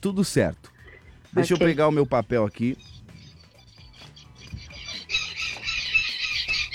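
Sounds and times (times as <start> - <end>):
speech: 0.0 - 0.7, 1.3 - 3.0
chickens squawking and clucking: 2.6 - 6.7.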